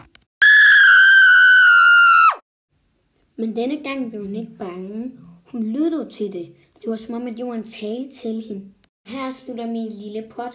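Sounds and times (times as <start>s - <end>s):
high-pitched scream: 0.4s - 2.4s
speech: 3.4s - 10.5s.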